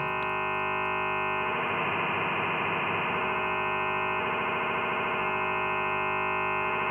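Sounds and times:
sine tone modulated by further sine tones: 0.0s - 6.9s.

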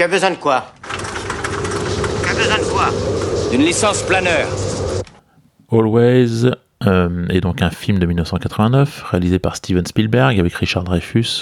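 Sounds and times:
speech: 0.0s - 0.8s, 2.4s - 4.6s, 5.7s - 11.4s
aircraft engine droning: 0.8s - 5.2s.

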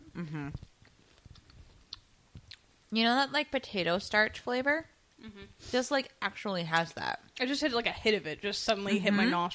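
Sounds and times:
speech: 0.2s - 0.7s, 2.9s - 9.5s
crunchy chewing of a snack: 0.6s - 2.6s.

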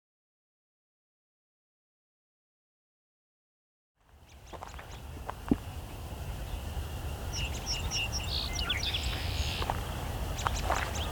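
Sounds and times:
outdoor noise: 4.0s - 11.1s
American robin and song sparrow singing: 4.2s - 11.1s.

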